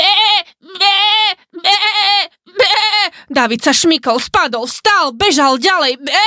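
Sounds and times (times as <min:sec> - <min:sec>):
sheep bleating: 0:00.0 - 0:03.1
speech: 0:03.4 - 0:06.2.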